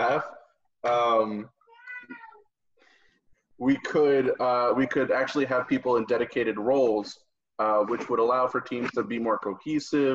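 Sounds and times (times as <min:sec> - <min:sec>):
speech: 0:00.2 - 0:02.2, 0:03.6 - 0:10.1
house cat meowing: 0:01.7 - 0:02.4.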